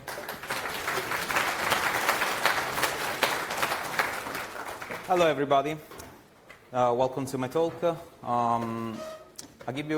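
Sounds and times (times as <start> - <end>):
audience applauding: 0.0 - 5.2
speech: 5.1 - 5.9, 6.7 - 9.9.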